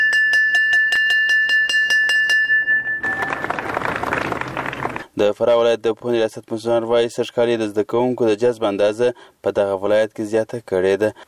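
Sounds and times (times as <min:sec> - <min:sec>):
school bell rung at an education ceremony: 0:00.0 - 0:03.8
speech: 0:05.2 - 0:11.2.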